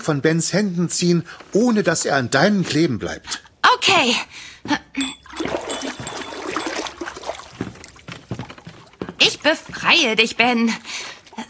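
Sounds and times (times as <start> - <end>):
speech: 0.0 - 5.5, 9.4 - 11.1
fingers dipping into a bowl of water: 5.2 - 8.0.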